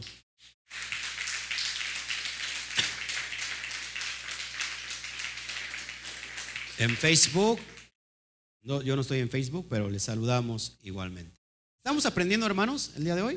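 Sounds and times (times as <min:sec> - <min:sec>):
audience applause: 0:00.7 - 0:07.9
speech: 0:06.8 - 0:07.8, 0:08.6 - 0:13.3.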